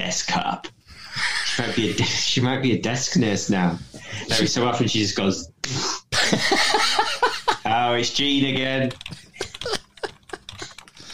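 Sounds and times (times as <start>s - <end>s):
speech: 0.0s - 9.8s
laughter: 0.9s - 2.3s, 6.1s - 7.7s, 9.0s - 11.1s
typing on a computer keyboard: 8.4s - 11.1s.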